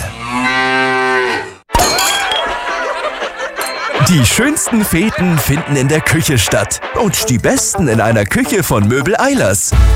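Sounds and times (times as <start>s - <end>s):
cow moo from a milk bottle: 0.0s - 1.6s
crash and clinking shattering glass: 1.7s - 4.4s
laughter: 2.3s - 6.6s
speech: 4.1s - 9.9s.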